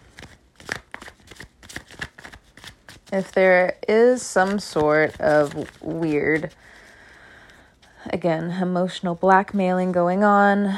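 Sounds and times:
deck of tarot cards being shuffled: 0.0s - 7.9s
speech: 3.1s - 6.7s, 8.1s - 10.7s.

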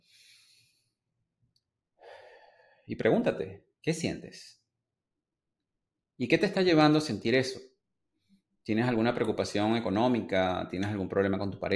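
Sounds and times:
slow deep breath: 0.0s - 1.0s, 2.0s - 2.9s
speech: 2.9s - 4.6s, 6.2s - 7.7s, 8.6s - 11.7s.

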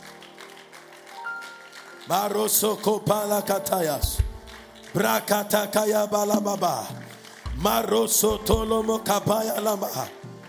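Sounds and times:
audience clapping: 0.0s - 10.4s
speech: 2.1s - 4.3s, 4.9s - 7.0s, 7.6s - 10.2s.

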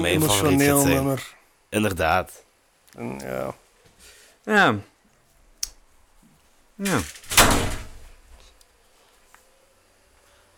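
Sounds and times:
speech: 0.0s - 2.4s, 3.0s - 3.6s, 4.4s - 4.9s, 6.8s - 7.6s
door swinging shut: 6.9s - 8.1s.

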